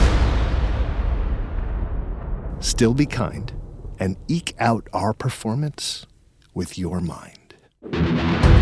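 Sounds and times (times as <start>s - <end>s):
heavy cannon blast ignited with a torch: 0.0s - 4.3s
speech: 2.6s - 8.5s.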